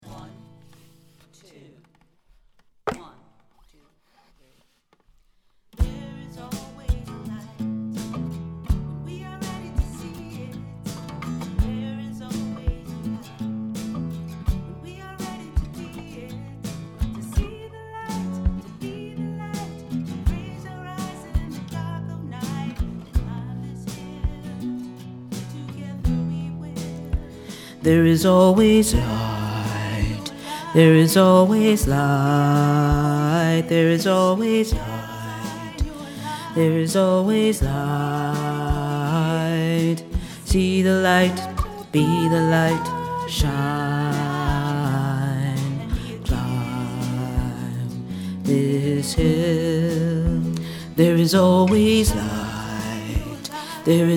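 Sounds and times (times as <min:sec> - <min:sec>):
bass: 0:05.8 - 0:54.1
choir singing: 0:27.9 - 0:39.5, 0:41.0 - 0:45.5, 0:51.3 - 0:54.1.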